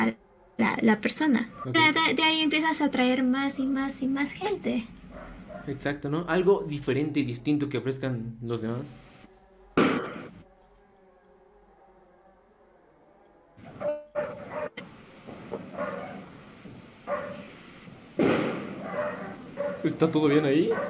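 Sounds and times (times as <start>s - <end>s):
speech: 0.0s - 5.0s, 5.6s - 9.1s, 19.8s - 20.8s
fireworks rockets bursting outside: 14.8s - 20.8s.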